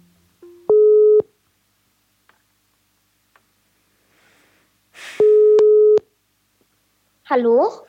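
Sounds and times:
phone ringback tone heard while calling a friend: 0.7s - 1.3s, 5.2s - 6.0s
speech: 7.3s - 7.8s.

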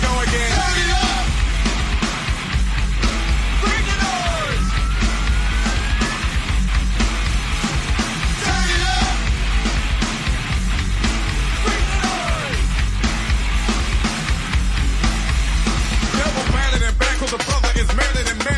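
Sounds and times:
distorted guitars in a rap metal track: 0.0s - 18.5s
pounding drums in a rap metal track: 0.0s - 18.5s
person shouting and yelling over a rap metal band: 3.6s - 6.4s, 11.6s - 12.7s.

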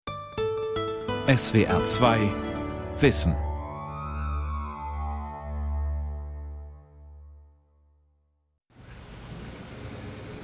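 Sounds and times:
speech: 1.3s - 2.4s, 3.0s - 3.5s
deep sustained droning tone: 3.4s - 8.0s.

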